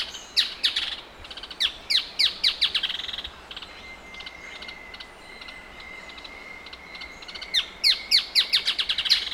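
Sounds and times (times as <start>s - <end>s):
male Striated softtail song of rapid descending high notes: 0.0s - 9.3s.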